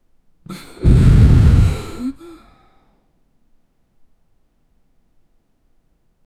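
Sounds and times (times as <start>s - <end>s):
collective gasp: 0.5s - 2.6s.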